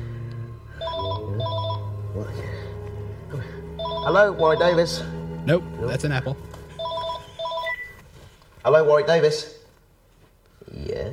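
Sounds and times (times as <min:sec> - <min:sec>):
steady low hum: 0:00.0 - 0:08.0
telephone ringing with bright electronic trills: 0:00.8 - 0:01.9, 0:03.8 - 0:04.9, 0:06.7 - 0:08.0
speech: 0:04.0 - 0:06.5, 0:08.6 - 0:09.6.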